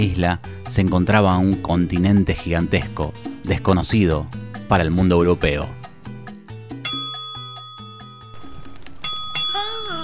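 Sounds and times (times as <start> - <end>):
speech: 0.0 - 5.8
low plucky rhythmic backdrop: 6.8 - 10.0
reception desk bell dinging: 6.9 - 10.0.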